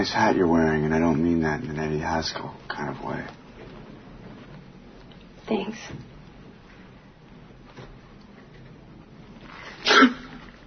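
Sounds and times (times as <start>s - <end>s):
speech: 0.0s - 3.4s, 5.5s - 6.1s
person sneezing: 9.8s - 10.5s.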